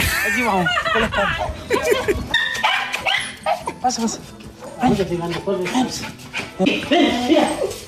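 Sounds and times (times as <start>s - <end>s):
laughter: 0.1s - 2.4s
speech: 0.3s - 2.5s, 3.8s - 7.8s
dog barking, yipping and whimpering excitedly: 1.4s - 3.9s, 4.5s - 7.8s.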